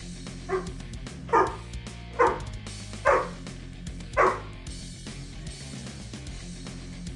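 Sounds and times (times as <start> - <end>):
dog barking: 0.5 - 3.4, 4.2 - 4.6.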